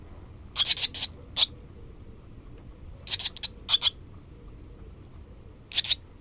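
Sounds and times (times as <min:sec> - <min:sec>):
soft low rumble: 0:00.0 - 0:06.2
barn swallow chirping calls: 0:00.5 - 0:02.0, 0:03.0 - 0:04.0, 0:05.6 - 0:06.2.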